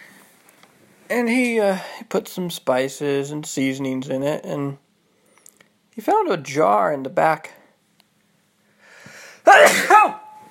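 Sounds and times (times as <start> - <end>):
speech: 1.1 - 4.8, 6.0 - 7.6, 9.5 - 10.2
person sneezing: 9.4 - 10.4.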